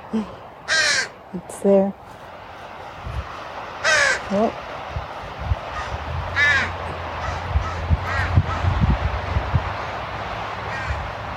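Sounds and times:
low steady rumble of wind or traffic: 0.0 - 11.3
speech: 0.1 - 0.4, 1.3 - 2.1, 4.3 - 4.6
crow cawing outdoors: 0.7 - 1.2, 3.8 - 4.4, 5.7 - 8.7, 10.7 - 11.1.

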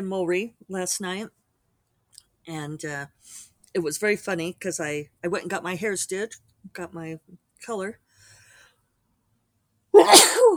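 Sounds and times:
speech: 0.0 - 1.4, 2.4 - 8.0
sneeze caused by smoke: 10.0 - 10.5.

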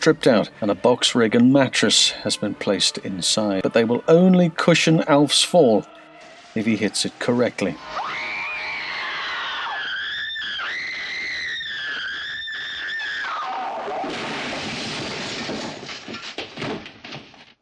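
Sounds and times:
speech: 0.0 - 6.0, 6.6 - 8.2
long piercing scream in a slowed-down film scene: 7.8 - 14.6
rough noisy rumbling and clattering: 14.5 - 17.6.

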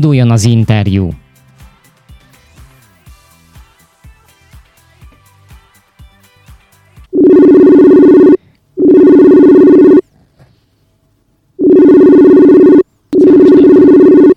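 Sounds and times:
speech: 0.0 - 1.2
telephone ringback tone while calling: 7.2 - 10.0, 11.6 - 14.3.

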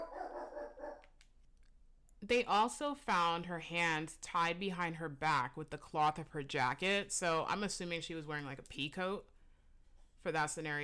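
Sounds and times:
dog barking: 0.0 - 1.1
speech: 2.3 - 9.3, 10.2 - 10.8.

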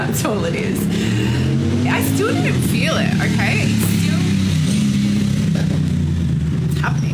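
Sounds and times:
speech: 0.0 - 1.2, 1.9 - 3.9, 6.8 - 7.1
motorcycle engine droning as it rides past: 0.0 - 7.1.

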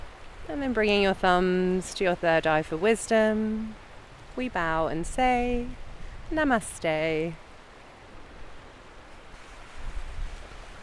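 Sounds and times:
ocean waves at the shore as the tide comes in: 0.0 - 10.8
speech: 0.5 - 3.8, 4.4 - 7.4.

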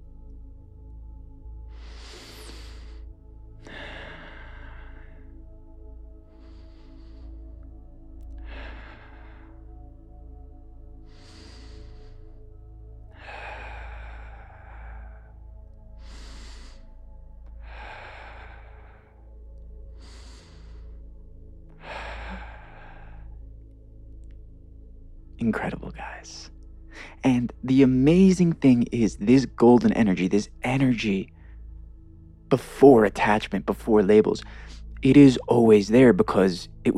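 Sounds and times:
group taking slow deep breaths during a chakra grounding meditation: 1.5 - 25.0
speech: 25.4 - 26.6, 27.2 - 31.3, 32.5 - 36.9.

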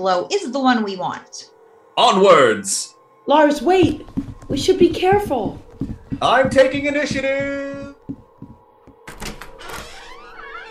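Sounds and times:
speech: 0.0 - 8.2
soft knocks and clunks: 3.7 - 9.0
heavy door swinging open with a scraping creak: 9.0 - 10.6.

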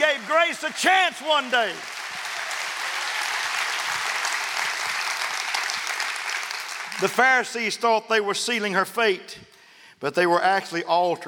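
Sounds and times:
crowd applauding: 0.0 - 7.6
speech: 0.5 - 2.0, 7.0 - 11.2.

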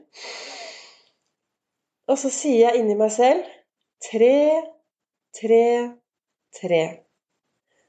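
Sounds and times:
deep breath in through the nose: 0.0 - 1.2
speech: 2.1 - 7.0.

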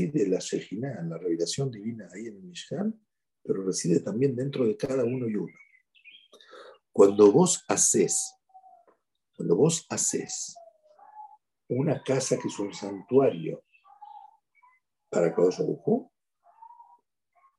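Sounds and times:
speech: 0.0 - 5.7, 7.0 - 8.4, 9.4 - 10.6, 11.7 - 13.7, 15.1 - 16.1
birds chirping: 0.0 - 17.5.

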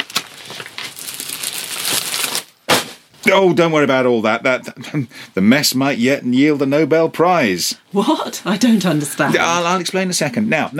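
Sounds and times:
pink sheet of paper tugged out from under an elephant tusk: 0.0 - 2.5
speech: 3.2 - 10.7.

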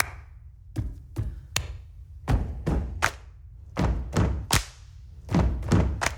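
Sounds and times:
band and friends stomping feet on a stage floor in a recording studio: 0.7 - 3.0, 3.8 - 4.6, 5.2 - 6.1.

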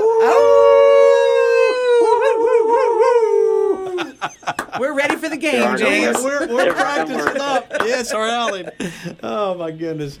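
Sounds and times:
people imitating a wolf howl: 0.0 - 4.2
laughter: 2.0 - 9.6
speech: 5.4 - 10.1.

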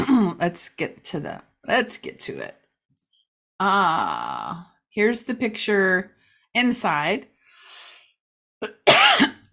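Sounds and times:
speech: 0.4 - 2.6, 3.6 - 7.3, 8.6 - 9.3
person coughing: 8.6 - 9.5.

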